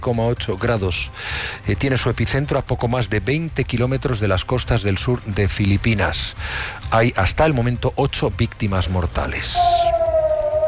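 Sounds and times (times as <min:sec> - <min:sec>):
speech: 0:00.0 - 0:09.9
air raid sirens wailing across Israel after missile interception: 0:09.6 - 0:10.6.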